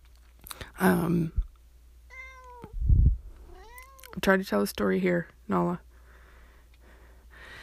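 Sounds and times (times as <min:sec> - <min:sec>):
speech: 0:00.8 - 0:01.4, 0:04.2 - 0:05.9
cat meowing: 0:02.1 - 0:02.8, 0:03.4 - 0:04.2.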